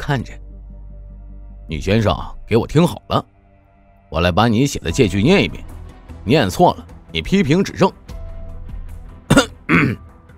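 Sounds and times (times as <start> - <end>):
speech: 0.1 - 0.4, 1.7 - 3.3, 4.1 - 8.0
man's throat-clearing cough: 9.3 - 10.1.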